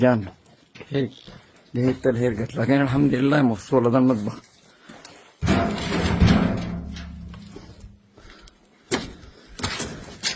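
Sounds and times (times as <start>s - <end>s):
speech: 0.0s - 4.5s
heavy veranda door banging shut: 5.4s - 7.5s.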